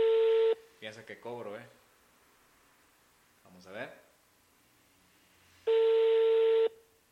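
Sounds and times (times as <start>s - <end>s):
telephone ringback tone on an unanswered call: 0.0s - 0.6s, 5.7s - 6.8s
faint hiss: 0.0s - 7.0s
speech: 0.9s - 1.8s, 3.5s - 4.1s.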